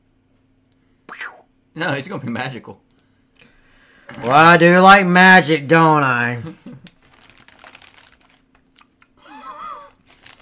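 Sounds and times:
speech: 1.8 - 2.8, 4.2 - 6.8
thin rolling paper crinkling and rustling: 6.0 - 9.0, 9.8 - 10.4.

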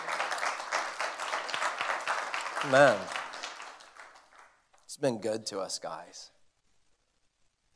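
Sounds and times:
audience applauding: 0.0 - 4.6
speech: 2.6 - 3.2, 5.0 - 6.4.

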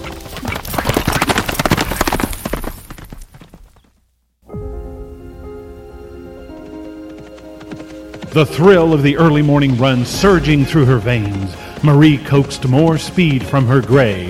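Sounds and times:
horse hooves galloping on road: 0.0 - 4.2, 5.6 - 14.2
sustained tonal music-like sound: 4.5 - 14.2
speech: 8.4 - 14.2.

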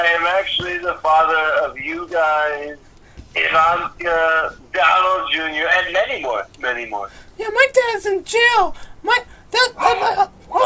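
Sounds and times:
speech: 0.4 - 10.6
dog barking: 9.7 - 10.6.

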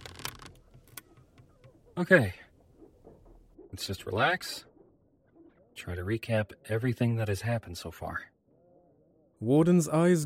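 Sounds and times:
warped wooden chair creaking as a man sits on it: 0.0 - 2.0
speech: 2.0 - 2.4, 3.8 - 4.7, 5.8 - 8.3, 9.4 - 10.2.

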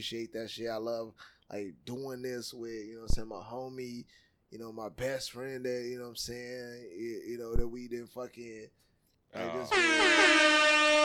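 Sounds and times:
speech: 0.0 - 11.0
loud brassy air horn blaring: 9.6 - 11.0.

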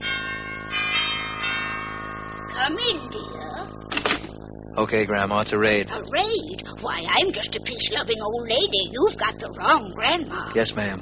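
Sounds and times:
cottage doorbell chiming: 0.0 - 3.9
speech: 2.7 - 3.8, 4.8 - 10.9.

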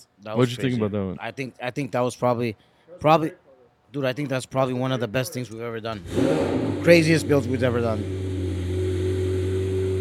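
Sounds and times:
speech: 0.2 - 8.2
wide-body McLaren sports car engine starting and running: 6.0 - 9.9.

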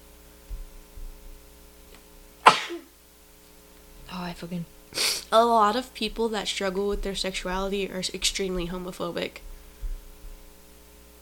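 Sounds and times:
faint steady electrical hum: 0.0 - 11.2
sharp explosive sneeze: 2.4 - 2.9
speech: 4.4 - 9.5.

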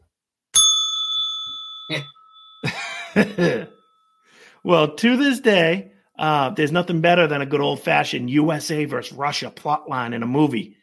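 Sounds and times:
bright bell ding: 0.6 - 5.0
speech: 1.9 - 3.8, 4.6 - 10.8.

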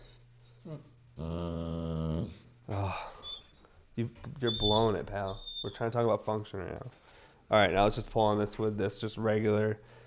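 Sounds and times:
dog whining and whimpering: 0.0 - 3.8, 4.4 - 5.8
speech: 0.7 - 1.4, 4.0 - 10.0
dog growling: 0.7 - 3.4.

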